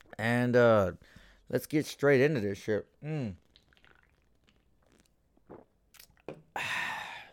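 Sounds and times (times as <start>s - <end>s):
speech: 0.2s - 3.4s
soft mouth noises: 3.0s - 7.3s
slurping sip of a drink: 3.5s - 6.3s.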